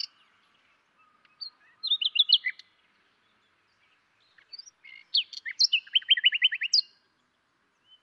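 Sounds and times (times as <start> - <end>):
common nightingale Luscinia megarhynchos singing: 0.0 - 8.0.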